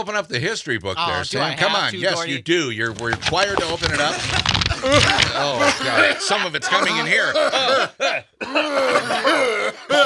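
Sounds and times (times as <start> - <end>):
speech: 0.0 - 10.0
laughter: 3.5 - 10.0
person coughing: 7.6 - 10.0
throat clearing: 7.6 - 10.0.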